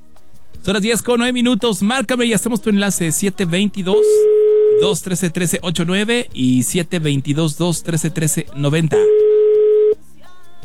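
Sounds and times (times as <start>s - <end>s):
speech: 0.6s - 9.2s
ringback tone on a telephone line: 3.9s - 5.0s, 8.9s - 10.0s.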